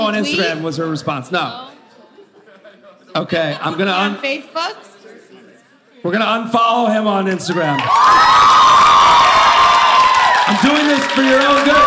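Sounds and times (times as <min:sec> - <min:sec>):
speech: 0:00.1 - 0:01.7, 0:03.2 - 0:04.9, 0:06.0 - 0:08.6, 0:10.5 - 0:11.8
audience members cheering and shouting: 0:07.5 - 0:11.8.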